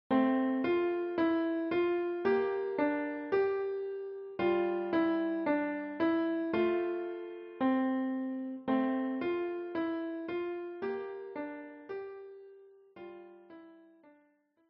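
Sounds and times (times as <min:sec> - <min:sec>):
piano piece: 0:00.1 - 0:14.0.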